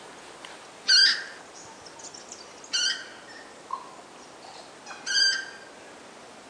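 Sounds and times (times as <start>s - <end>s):
Purple moorhen harsh nasal squawks: 0.9s - 2.1s, 2.7s - 5.7s.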